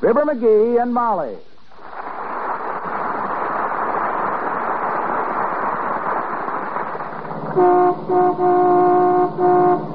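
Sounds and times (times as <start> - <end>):
speech: 0.0 - 1.5, 7.6 - 9.9
dense traffic rumble on 14th Street: 2.8 - 9.9
car horn honking in sustained blasts: 7.6 - 9.9.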